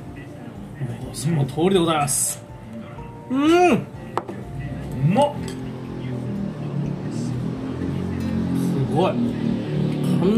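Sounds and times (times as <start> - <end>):
speech: 1.1 - 2.5, 3.3 - 4.0, 5.1 - 5.6, 9.0 - 9.6
loud motorcycle engine passing by: 5.2 - 10.3.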